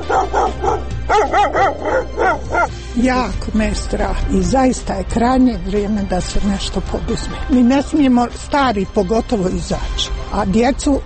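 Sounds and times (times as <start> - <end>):
stray dogs barking: 0.0 - 2.8
speech: 3.0 - 11.0.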